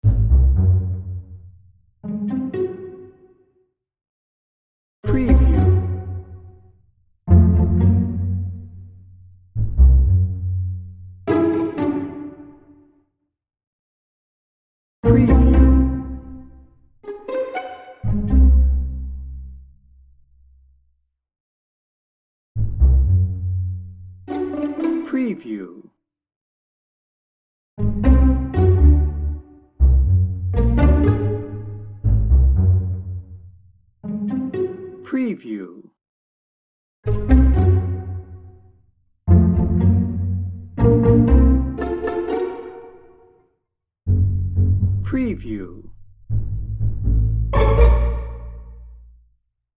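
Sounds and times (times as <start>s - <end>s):
quirky pizzicato strings: 0.0s - 1.4s, 2.0s - 3.3s, 5.0s - 6.5s, 7.3s - 9.0s, 9.6s - 12.8s, 15.0s - 19.4s, 22.6s - 25.2s, 27.8s - 33.4s, 34.0s - 35.1s, 37.1s - 38.6s, 39.3s - 43.3s, 44.1s - 49.0s.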